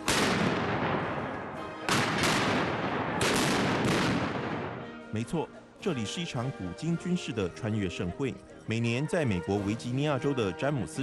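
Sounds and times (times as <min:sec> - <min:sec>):
17th-century and American Revolutionary War cannons firing at a historical military event in Virginia: 0:00.0 - 0:05.0
speech: 0:05.2 - 0:11.0.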